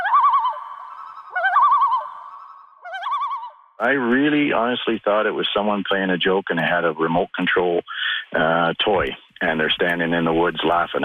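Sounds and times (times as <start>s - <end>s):
common loon calling while swimming, camping in Alberta: 0.0s - 4.2s
speech: 3.8s - 11.0s.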